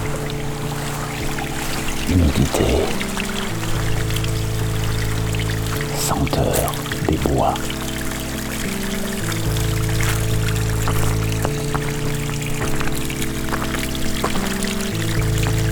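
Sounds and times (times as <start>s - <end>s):
water gently lapping: 0.0s - 15.6s
speech: 2.1s - 3.3s, 6.2s - 7.8s.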